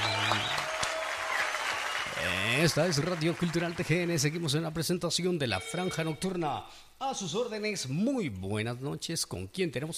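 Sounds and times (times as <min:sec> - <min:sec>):
applause for birthday celebrants: 0:00.0 - 0:04.6
speech: 0:02.5 - 0:09.9.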